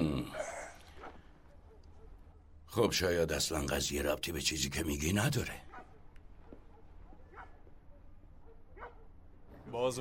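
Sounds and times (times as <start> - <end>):
female dog barking: 0.9 - 2.5, 5.7 - 9.2
speech: 2.8 - 5.7, 9.7 - 9.9
female dog soft yip: 5.7 - 9.1.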